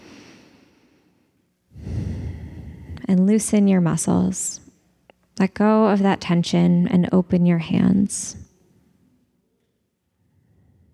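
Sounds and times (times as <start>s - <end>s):
deep breath during a guided relaxation and prayer: 0.0s - 3.1s
speech: 3.1s - 4.6s, 5.4s - 8.4s.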